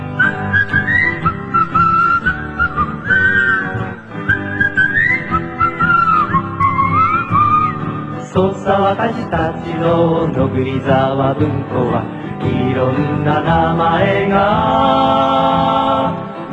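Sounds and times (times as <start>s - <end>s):
bright clear whistled melody: 0.1s - 8.3s
speech: 8.9s - 16.2s.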